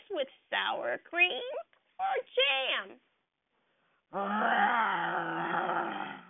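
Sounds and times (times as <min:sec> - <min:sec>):
speech: 0:00.2 - 0:03.1, 0:04.1 - 0:04.6
deep rumbling bear growl: 0:04.1 - 0:06.2.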